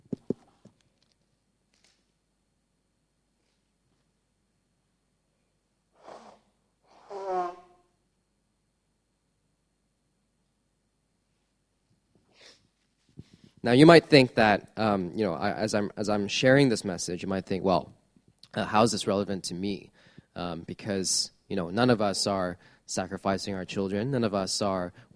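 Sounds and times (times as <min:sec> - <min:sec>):
faint sniff: 0:05.9 - 0:07.6, 0:12.3 - 0:13.5
person blowing their nose: 0:05.9 - 0:07.9
speech: 0:13.6 - 0:25.1.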